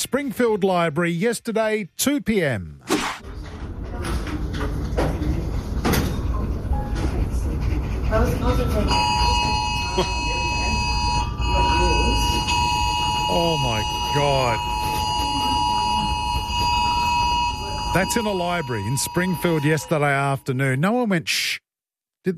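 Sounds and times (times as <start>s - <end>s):
speech: 0.1s - 2.9s, 10.0s - 10.3s, 13.3s - 14.7s, 18.0s - 21.6s
noisy chatter: 3.4s - 20.4s
many phones sounding emergency alert tones in the Springfield Library: 8.9s - 20.6s.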